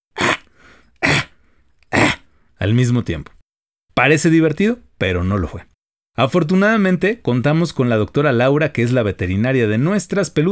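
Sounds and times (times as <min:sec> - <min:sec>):
voice imitating a dog's hacking kennel cough: 0:00.1 - 0:02.3
faint breathing: 0:00.4 - 0:02.6
speech: 0:02.6 - 0:03.4, 0:04.0 - 0:10.5.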